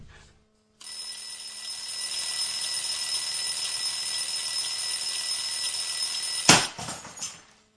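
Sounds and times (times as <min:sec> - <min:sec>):
alarm clock ringing: 0:00.8 - 0:06.8.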